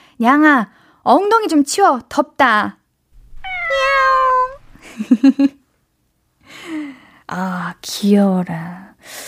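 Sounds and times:
speech: 0:00.2 - 0:02.8, 0:05.0 - 0:05.6, 0:07.3 - 0:09.2
drawn-out cat meow: 0:03.2 - 0:04.8
faint low hum: 0:03.2 - 0:05.5
laughter: 0:04.8 - 0:05.5.

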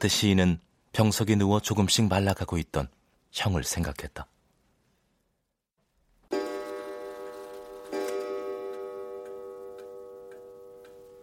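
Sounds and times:
speech: 0:00.0 - 0:04.3
old wall clock chiming: 0:06.3 - 0:11.2.

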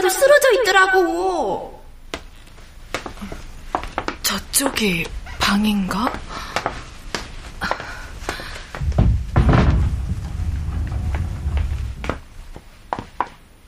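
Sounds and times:
speech: 0:00.1 - 0:01.8, 0:04.3 - 0:06.8
sharp knocks and thunks: 0:08.7 - 0:12.3
sliding door rumbling open with a low rolling scrape: 0:08.8 - 0:12.5.

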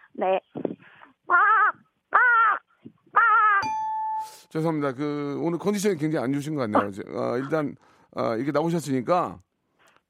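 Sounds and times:
speech: 0:00.2 - 0:00.6, 0:04.5 - 0:09.5
person imitating crow caws: 0:01.3 - 0:03.6
sustained electronic chime: 0:03.6 - 0:04.6.

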